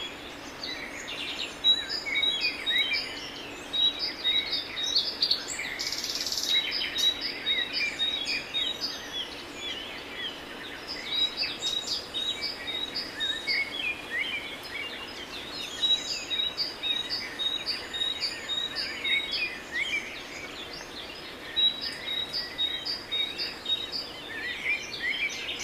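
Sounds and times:
birds singing and calling in a garden in Valencia Venezuela: 0.0 - 25.6
soft constant hiss: 0.0 - 25.6.

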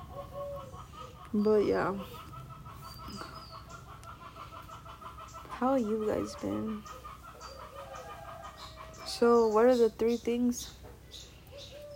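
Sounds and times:
owls hooting outdoors: 0.0 - 9.8, 11.5 - 11.9
steady hum: 0.0 - 11.9
speech: 0.7 - 2.2, 5.6 - 7.0, 9.2 - 11.2.

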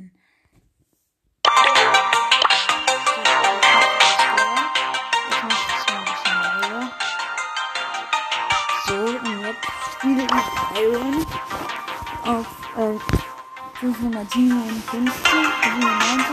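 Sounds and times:
mobile video game sound effects: 1.5 - 12.8
mobile video game electronic music with plucked synth notes: 1.5 - 16.3
speech: 14.2 - 16.3.

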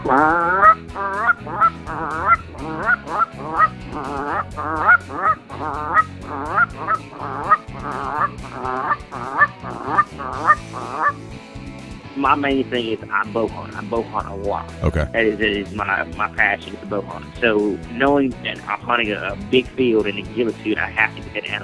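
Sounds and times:
Canada goose honking: 0.0 - 11.2
speech: 0.1 - 0.5, 12.2 - 21.6.

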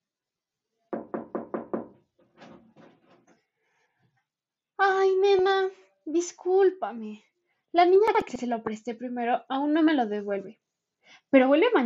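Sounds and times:
knocking on a door: 1.0 - 3.2
speech: 5.3 - 11.8.

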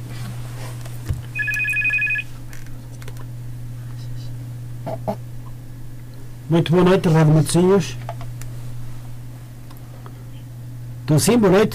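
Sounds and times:
steady low hum: 0.0 - 11.7
telephone ringing with short trilling electronic burst: 1.3 - 2.3
speech: 4.9 - 5.2, 6.5 - 8.1, 11.1 - 11.7.

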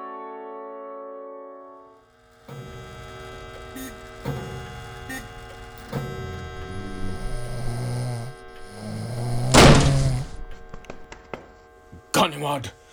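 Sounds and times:
harsh burst of noise: 3.5 - 11.1
man snoring: 3.8 - 11.2
dull thumps: 5.1 - 11.5
speech: 12.4 - 12.8.

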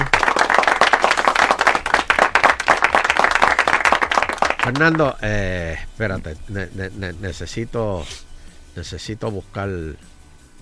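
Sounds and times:
lively applause of many hands clapping: 0.0 - 5.2
speech: 4.7 - 10.0.

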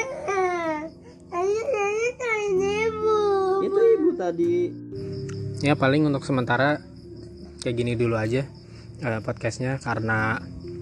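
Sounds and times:
young child crying and whimpering: 0.0 - 4.4
speech: 4.3 - 6.9, 7.6 - 10.6.

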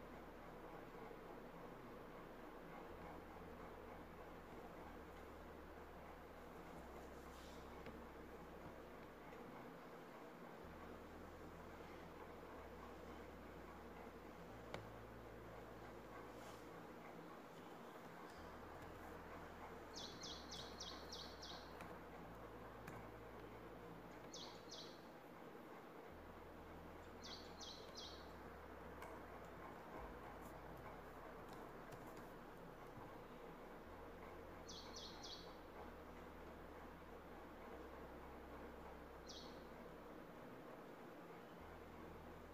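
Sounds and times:
soft room noise in a home: 0.0 - 42.5
steady low hum in a home: 0.0 - 42.5
short bright bird chirps: 19.9 - 21.8, 24.3 - 25.0, 27.2 - 28.3, 34.7 - 35.5.

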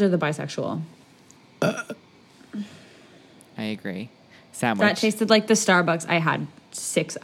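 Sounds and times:
speech: 0.0 - 1.0, 1.6 - 2.8, 3.6 - 7.2
loud burp: 1.6 - 2.0
softer short low grunt or second belch: 1.6 - 2.0.

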